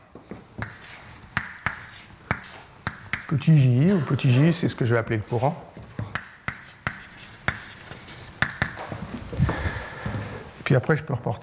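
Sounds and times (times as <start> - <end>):
scratchy writing strokes during a lecture: 0.6 - 3.3, 6.1 - 8.8
speech: 3.3 - 5.8, 10.7 - 11.4.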